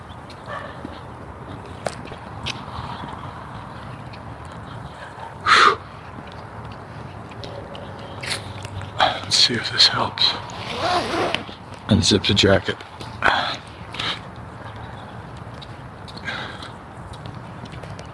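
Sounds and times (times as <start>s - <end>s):
outdoor noise: 0.0s - 18.1s
dog barks: 0.4s - 1.0s
speech: 9.4s - 12.9s.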